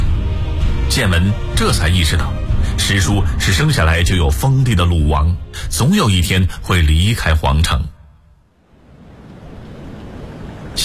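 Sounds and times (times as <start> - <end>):
speech: 1.0 - 7.9
sea waves washing against a ship at sea at night: 8.6 - 10.8.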